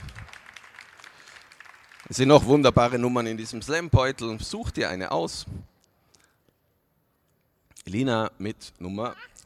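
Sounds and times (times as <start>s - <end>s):
audience applause: 0.0s - 3.8s
speech: 2.1s - 5.7s, 7.9s - 9.3s.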